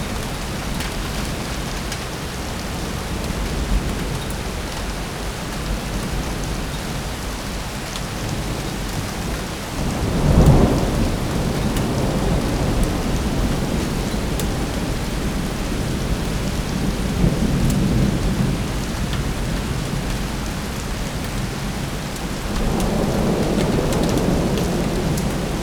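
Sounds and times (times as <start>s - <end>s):
rain: 0.0s - 25.6s
thunder: 9.7s - 20.1s, 22.5s - 25.6s.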